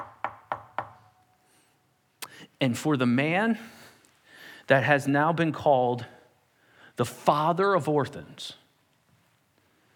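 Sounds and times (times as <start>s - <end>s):
sharp knocks on a wooden door: 0.0s - 1.0s
speech: 2.6s - 3.8s, 4.7s - 6.2s, 7.0s - 8.6s.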